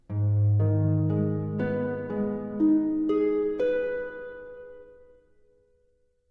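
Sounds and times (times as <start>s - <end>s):
harp playing a rising arpeggio: 0.1s - 5.1s.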